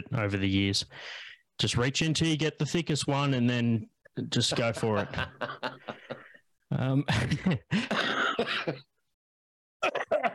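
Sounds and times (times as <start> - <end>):
speech: 0.0 - 8.9, 9.8 - 10.1
laughter: 4.4 - 6.4
smoker's raspy coughing: 7.2 - 9.0, 9.8 - 10.3.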